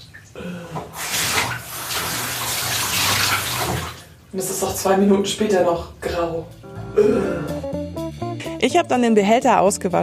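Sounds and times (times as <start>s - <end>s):
tap water gushing through a vacuum cleaner filter being rinsed: 0.0s - 4.1s
speech: 4.3s - 7.6s, 8.7s - 10.0s.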